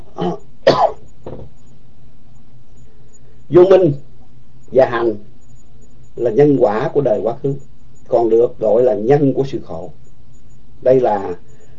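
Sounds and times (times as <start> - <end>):
person clearing throat: 0.1 - 1.4
person coughing: 0.2 - 1.0
speech: 3.5 - 4.0, 4.7 - 5.3, 6.2 - 10.0, 10.8 - 11.5.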